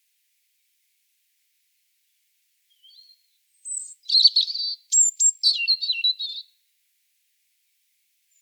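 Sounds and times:
European robin Erithacus rubecula singing: 0:02.7 - 0:06.5.

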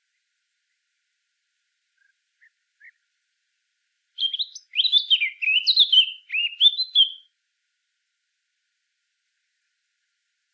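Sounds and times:
Eurasian blackcap Sylvia atricapilla singing: 0:04.2 - 0:07.2.

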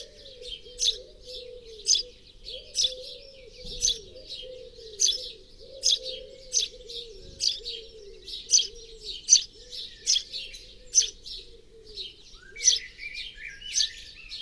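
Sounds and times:
house sparrow Passer domesticus chirping: 0:00.0 - 0:14.3.

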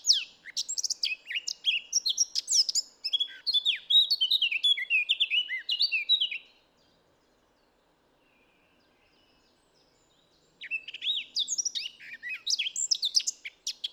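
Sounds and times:
Eurasian blackcap Sylvia atricapilla warbling song: 0:00.0 - 0:06.5, 0:10.6 - 0:13.9.

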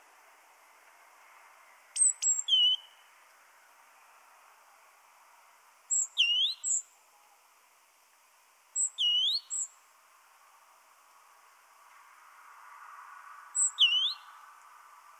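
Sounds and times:
great tit Parus major calls: 0:02.0 - 0:03.0, 0:05.9 - 0:06.9, 0:08.8 - 0:09.8, 0:13.6 - 0:14.4.

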